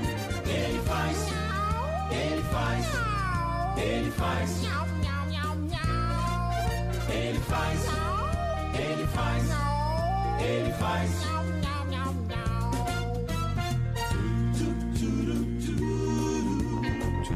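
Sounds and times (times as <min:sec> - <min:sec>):
backing music: 0:00.0 - 0:17.3
kitten-like meows probably imitated by a voice: 0:01.5 - 0:03.8, 0:07.9 - 0:08.8, 0:09.6 - 0:13.4.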